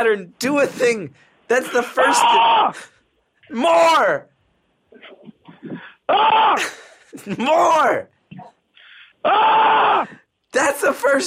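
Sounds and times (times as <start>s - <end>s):
speech: 0.0s - 2.9s, 3.5s - 4.3s, 4.9s - 8.5s, 9.2s - 11.2s
person screaming loudly: 1.7s - 2.9s, 5.8s - 6.8s, 9.2s - 10.3s.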